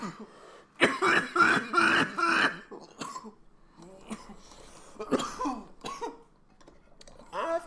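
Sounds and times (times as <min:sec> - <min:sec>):
person coughing fit after a cannabis dab: 0:00.0 - 0:03.4, 0:04.1 - 0:06.3.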